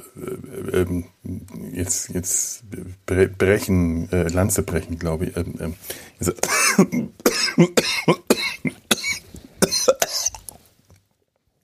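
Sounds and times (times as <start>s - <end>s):
speech: 0.2s - 8.2s
coughing fit of harsh coughs: 6.4s - 10.4s.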